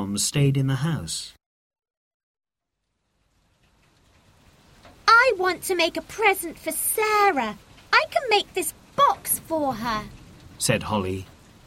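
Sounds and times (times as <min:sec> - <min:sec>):
speech: 0:00.1 - 0:01.4, 0:05.3 - 0:11.3
steady rain falling: 0:02.7 - 0:11.6.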